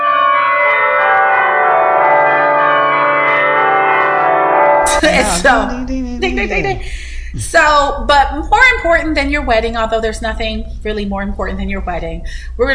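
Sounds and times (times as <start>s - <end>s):
wedding bells ringing in a full sustained peal: 0.0s - 4.8s
laughter: 4.9s - 7.5s
speech: 5.0s - 12.7s.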